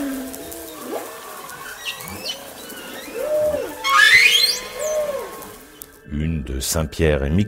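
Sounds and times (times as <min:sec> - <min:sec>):
whale song from a whale off Madagascar: 0:00.0 - 0:05.8
speech: 0:06.5 - 0:07.4.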